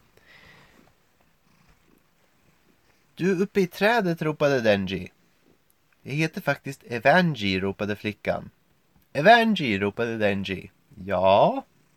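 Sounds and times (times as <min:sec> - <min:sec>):
cat purring: 0:00.4 - 0:03.8, 0:10.6 - 0:11.9
speech: 0:03.2 - 0:05.2, 0:06.0 - 0:11.7.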